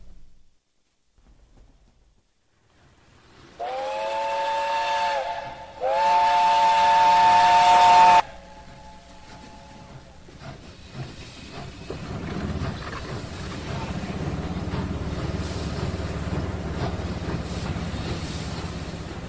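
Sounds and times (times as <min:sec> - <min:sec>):
railway station noise in Brighton England in 1962: 0:02.4 - 0:19.2
steam hissing: 0:02.8 - 0:19.2
steam whistle blasts: 0:03.6 - 0:10.0.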